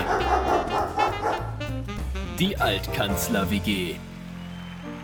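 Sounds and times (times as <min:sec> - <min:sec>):
small dog yapping: 0:00.0 - 0:01.5
speech: 0:02.4 - 0:04.1.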